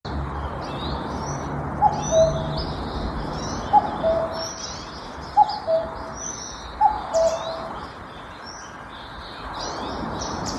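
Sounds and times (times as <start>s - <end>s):
high chirping of other birds in a forest: 0.1s - 10.5s
common cuckoo two-note call in a forest: 1.8s - 2.6s, 3.7s - 4.6s, 5.4s - 6.2s, 6.8s - 7.8s.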